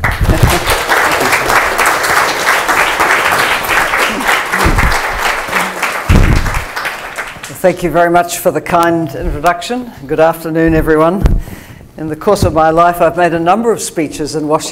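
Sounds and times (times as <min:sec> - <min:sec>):
audience applause welcoming a speaker: 0:00.0 - 0:07.5
speech: 0:07.6 - 0:14.7.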